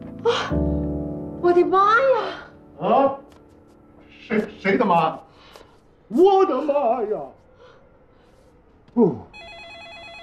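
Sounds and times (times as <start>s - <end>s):
speech: 0.2s - 3.3s, 4.3s - 5.2s, 6.1s - 7.4s, 9.0s - 9.3s
telephone ringing with warbling electronic trill: 9.4s - 10.2s.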